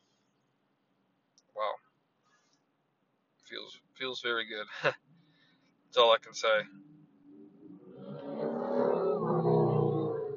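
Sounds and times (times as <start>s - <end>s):
speech: 3.7s - 5.1s, 5.9s - 6.9s
laughter: 4.7s - 5.0s
motorcycle driving by: 6.7s - 10.3s.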